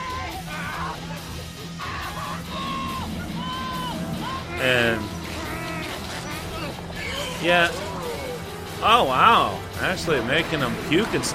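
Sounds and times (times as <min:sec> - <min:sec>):
people screaming at a home haunt attraction in San Diego: 0:00.0 - 0:09.2
constant crowd din: 0:00.0 - 0:11.3
speech: 0:07.4 - 0:07.8, 0:08.8 - 0:11.3.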